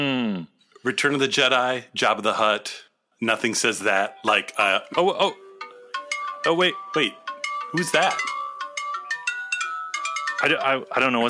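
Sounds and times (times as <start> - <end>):
speech: 0.0 - 5.4, 6.4 - 8.4, 10.4 - 11.2
phone ringtone electronic melody: 3.8 - 11.2.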